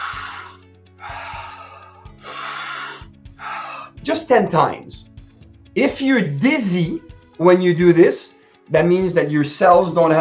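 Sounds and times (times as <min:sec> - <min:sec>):
deep breathing: 0:00.0 - 0:04.0
speech: 0:04.0 - 0:05.1, 0:05.8 - 0:10.1.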